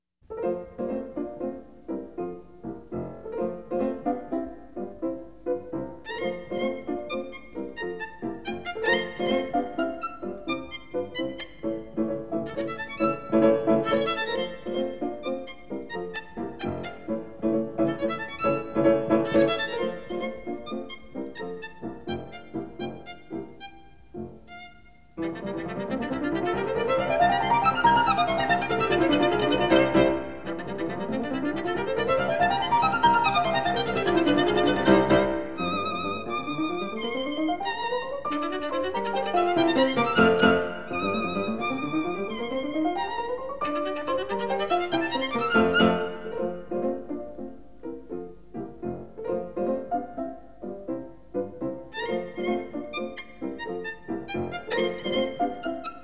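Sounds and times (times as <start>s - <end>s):
piano playing a sonata scherzo: 0.0s - 56.0s
violin playing a sonata scherzo: 0.3s - 56.0s.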